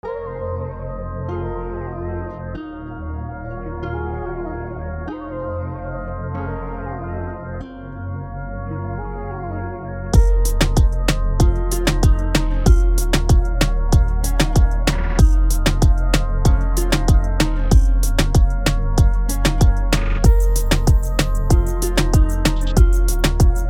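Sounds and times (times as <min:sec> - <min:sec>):
Latin melody loop at 95 BPM: 0:10.2 - 0:23.6.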